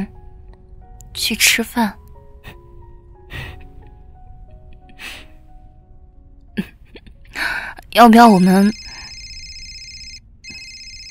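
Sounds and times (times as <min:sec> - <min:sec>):
speech: 0:01.2 - 0:02.6, 0:08.0 - 0:08.8
electronic phone ringtone with high-pitched warble: 0:08.3 - 0:11.0.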